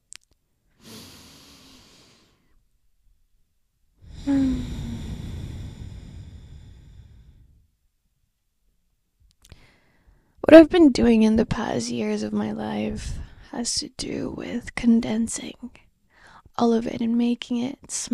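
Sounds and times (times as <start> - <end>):
slow deep breathing in a guided breathing exercise: 0.7 - 2.6, 4.0 - 7.8, 9.5 - 10.4
speech: 10.5 - 15.8, 16.6 - 18.1.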